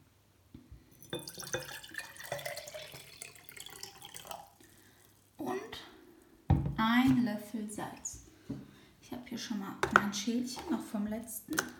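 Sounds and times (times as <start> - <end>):
water pouring into a glass: 0.9 - 5.4
speech: 6.8 - 8.6, 9.3 - 11.7.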